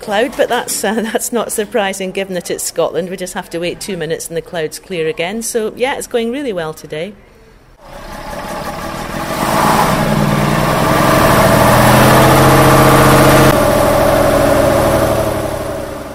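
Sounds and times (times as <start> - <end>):
speech: 0.0 - 8.0
vehicle engine idling: 7.8 - 16.1.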